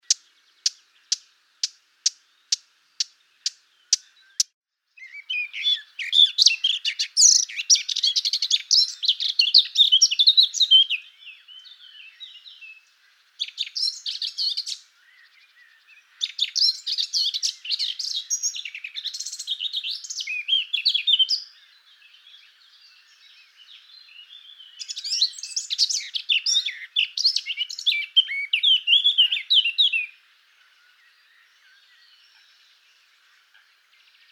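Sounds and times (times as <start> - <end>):
blackcap: 0.0 - 21.8, 22.4 - 34.3.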